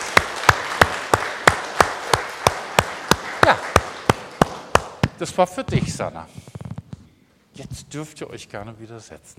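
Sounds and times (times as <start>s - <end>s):
audience clapping in unison in a steady rhythmic beat: 0.0s - 5.5s
speech: 5.2s - 6.5s, 7.6s - 9.3s.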